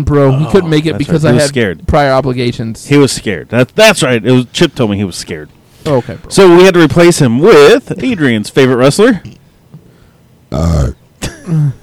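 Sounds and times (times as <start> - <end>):
speech: 0.0 - 9.4, 10.5 - 11.8
person burping: 0.2 - 1.0, 10.5 - 11.8.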